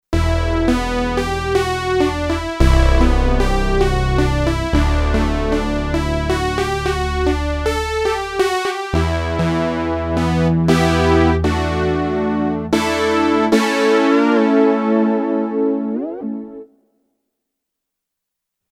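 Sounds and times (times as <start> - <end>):
Memorymoog and Kurzweil K2500X synthesizer: 0.2 - 16.8.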